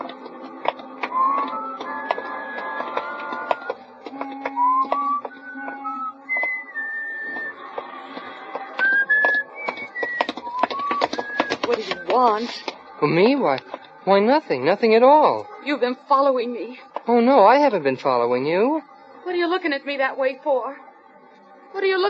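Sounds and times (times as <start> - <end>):
footsteps on a street: 0.0 - 15.9
person whistling a tune while walking along a street at night: 1.1 - 2.8, 3.5 - 7.6, 8.8 - 12.1
speech: 12.2 - 20.9, 21.7 - 22.0.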